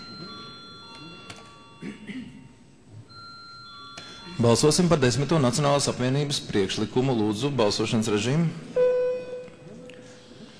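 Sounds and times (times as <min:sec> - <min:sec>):
electronic bell ringing to call a vote in a parliament session: 0:00.0 - 0:01.8, 0:03.1 - 0:05.4, 0:08.8 - 0:09.6
speech: 0:04.4 - 0:08.8.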